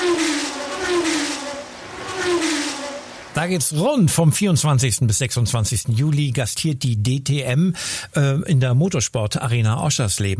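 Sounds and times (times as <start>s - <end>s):
race car engine revving and accelerating: 0.0s - 4.0s
speech: 3.4s - 10.3s.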